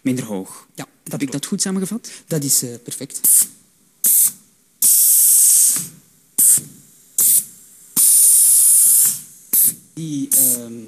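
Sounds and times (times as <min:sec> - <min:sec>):
speech: 0:00.0 - 0:03.6, 0:10.0 - 0:10.8
compressed air hissing into small pneumatic artificial muscles of a robot joint: 0:03.2 - 0:10.7.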